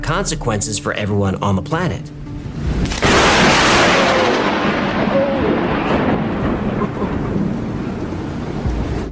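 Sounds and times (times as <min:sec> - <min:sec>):
speech: 0:00.0 - 0:02.2
long heavy thunder rumble: 0:02.4 - 0:09.1
sharp lightning crack: 0:02.5 - 0:09.1.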